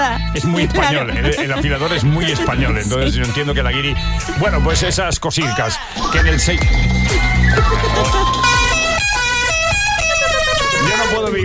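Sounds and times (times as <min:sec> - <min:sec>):
speech: 0:00.0 - 0:08.5
laughter: 0:00.4 - 0:04.8, 0:05.4 - 0:11.3
car horns honking: 0:07.7 - 0:11.4.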